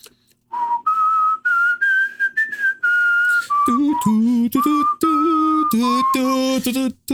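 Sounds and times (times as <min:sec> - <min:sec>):
person whistling a slow lilting melody: 0:00.5 - 0:07.1
person humming a tune in a low voice: 0:03.3 - 0:07.1.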